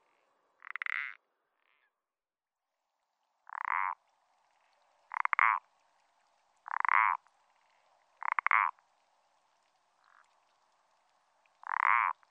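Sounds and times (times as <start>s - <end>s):
Parsley frog croaking in France: 0.6s - 1.9s, 3.5s - 4.0s, 5.1s - 5.7s, 6.6s - 8.8s, 10.0s - 10.3s, 11.6s - 12.2s.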